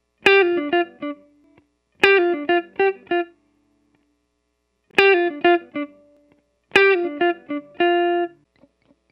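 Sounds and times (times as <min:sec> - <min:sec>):
electric guitar single note in D minor, pop rock: 0:00.3 - 0:03.3, 0:05.0 - 0:06.2, 0:06.8 - 0:08.3.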